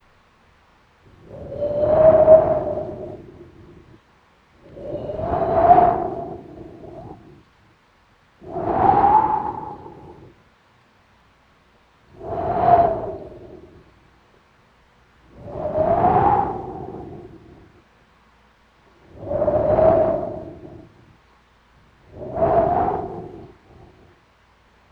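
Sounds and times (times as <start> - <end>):
wind whispering: 1.1 - 7.6, 8.4 - 10.6, 12.1 - 14.1, 15.3 - 17.9, 18.9 - 24.3.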